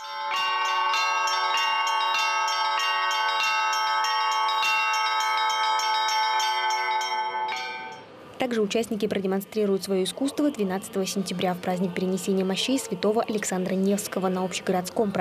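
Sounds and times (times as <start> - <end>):
several church bells ringing in a continuous peal: 0.0 - 8.1
speech: 8.4 - 15.1.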